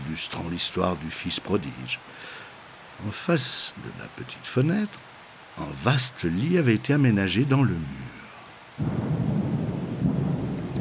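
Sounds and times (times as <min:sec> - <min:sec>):
speech: 0:00.2 - 0:02.4, 0:03.0 - 0:08.2, 0:08.8 - 0:09.2
rumbling thunder muffled by trees: 0:08.8 - 0:10.7.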